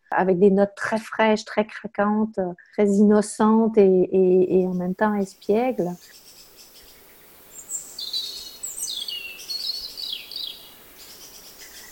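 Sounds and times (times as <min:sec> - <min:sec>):
speech: 0:00.2 - 0:06.3
birdsong with chirps and trills at dawn in spring: 0:04.4 - 0:11.8.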